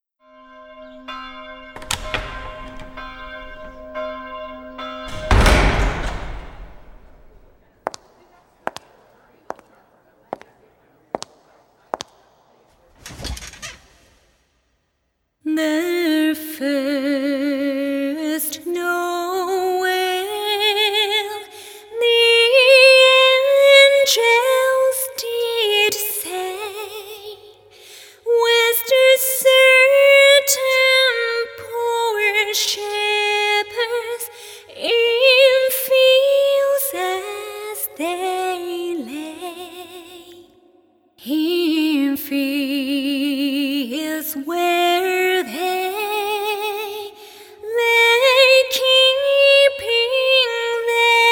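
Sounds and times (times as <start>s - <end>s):
a cappella singing: 15.5s - 27.5s, 28.3s - 40.5s, 41.2s - 51.3s.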